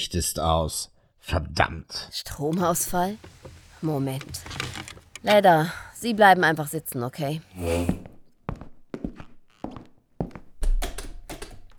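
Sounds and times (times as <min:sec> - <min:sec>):
speech: 0:00.0 - 0:08.1
locked door handle rattling and jerking: 0:02.5 - 0:05.8, 0:10.6 - 0:11.7.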